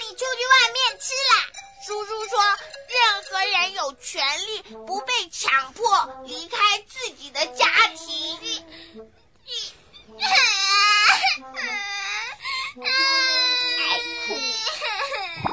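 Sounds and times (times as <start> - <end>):
speech: 0.2 - 9.6
young child crying loudly in wavering wails and sobs: 9.6 - 15.4.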